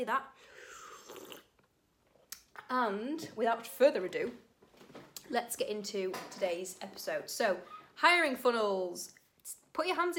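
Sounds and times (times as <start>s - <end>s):
speech: 0.0s - 1.4s, 2.7s - 4.4s, 5.3s - 10.1s
person slurping a sip of hot tea: 0.5s - 1.7s.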